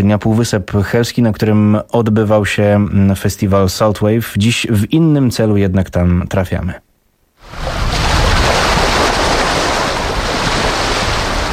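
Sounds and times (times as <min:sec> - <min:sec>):
speech: 0:00.0 - 0:07.8
sea waves washing onto a beach on the Hel Peninsula: 0:07.4 - 0:11.5
wind: 0:07.4 - 0:11.5.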